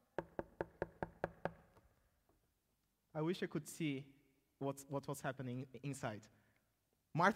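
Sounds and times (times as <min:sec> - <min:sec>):
knocking on the wooden door of a house: 0:00.1 - 0:01.7
speech: 0:03.2 - 0:06.4, 0:07.1 - 0:07.3.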